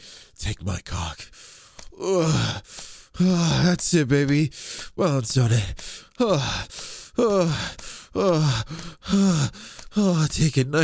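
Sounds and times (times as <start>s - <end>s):
speech: 0.4s - 10.8s
breathy voiced gasps sliding into falling moans: 1.3s - 3.6s, 4.5s - 5.0s, 5.8s - 10.0s.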